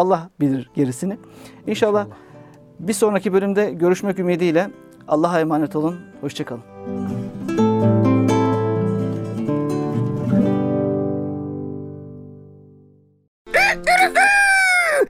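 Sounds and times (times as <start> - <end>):
speech: 0.0 - 7.1
sustained musical chord ringing: 5.6 - 12.8
rooster crowing: 13.5 - 15.0.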